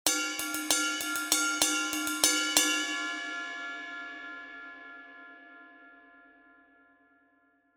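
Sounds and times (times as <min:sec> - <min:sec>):
20in crash ride cymbal: 0:00.1 - 0:03.6.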